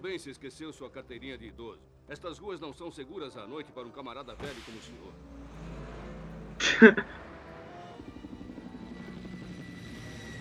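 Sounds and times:
speech: 0.0 - 5.5, 6.6 - 7.2
helicopter flying by in a cartoon: 5.1 - 10.4
laughter: 6.6 - 7.3.

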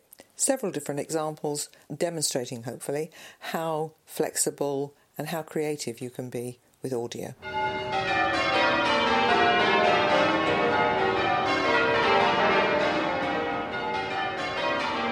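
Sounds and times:
speech: 0.4 - 8.2
peal of church bells ringing in descending order: 7.4 - 15.1.

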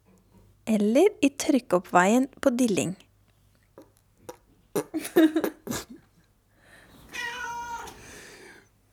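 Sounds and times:
speech: 0.7 - 3.0, 5.2 - 5.5
person imitating cat meows: 7.2 - 8.0.

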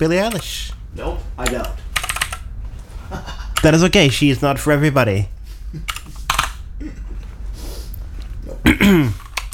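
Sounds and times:
speech: 0.0 - 1.8, 3.1 - 5.9, 6.8 - 7.0
low steady hum: 0.0 - 9.5
clicky mechanical keyboard typing: 1.4 - 2.4, 5.9 - 6.6, 9.2 - 9.5.

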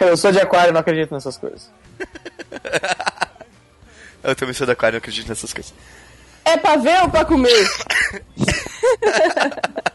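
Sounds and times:
speech: 0.0 - 3.2, 4.2 - 9.6
laughter-like vocalizing: 2.0 - 3.4, 8.0 - 9.9
short harsh coughs: 7.5 - 8.8.

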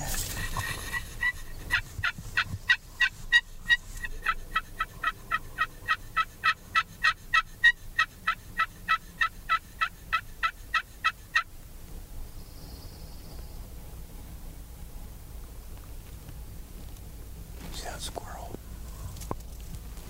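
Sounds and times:
wild turkey gobbling: 0.2 - 11.5.

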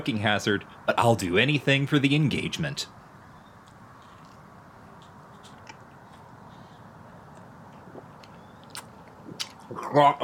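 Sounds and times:
speech: 0.0 - 3.0, 9.9 - 10.2
wet chewing of bubblegum: 3.5 - 9.9.

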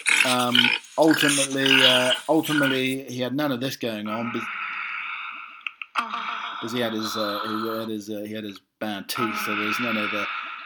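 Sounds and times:
pig grunting: 0.0 - 2.8, 6.4 - 7.9, 9.2 - 10.4
speech: 0.0 - 4.7, 6.6 - 10.4.

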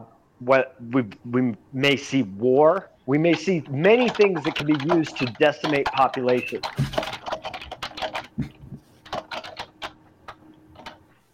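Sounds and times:
speech: 0.0 - 7.1
loud computer keyboard typing: 3.3 - 11.0.

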